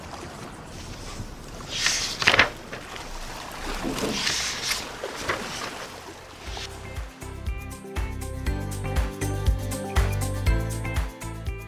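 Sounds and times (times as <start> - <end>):
river water rushing and splashing: 0.0 - 8.1
steady rhythmic music: 6.5 - 11.6.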